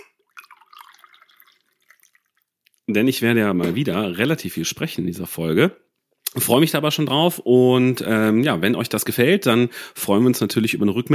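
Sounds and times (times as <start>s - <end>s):
tea pouring into a cup: 0.0s - 2.9s
speech: 2.9s - 5.8s, 6.4s - 11.1s.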